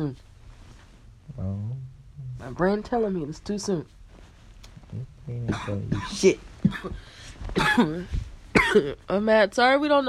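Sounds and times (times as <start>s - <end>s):
speech: 0.0s - 0.3s, 1.3s - 4.0s, 4.9s - 10.0s
faint low rumble: 0.0s - 10.0s
person coughing: 5.4s - 7.0s, 7.6s - 8.0s, 8.6s - 9.0s.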